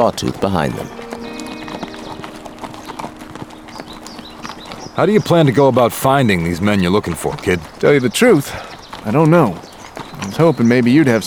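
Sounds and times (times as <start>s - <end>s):
speech: 0.0s - 1.0s, 5.0s - 11.2s
Appaloosa horse hooves trotting: 0.0s - 11.2s.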